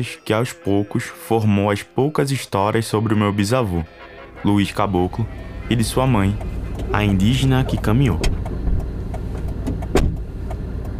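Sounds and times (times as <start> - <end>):
speech: 0.0 - 8.4
car interior rumble while driving toward Olinda: 4.6 - 10.9.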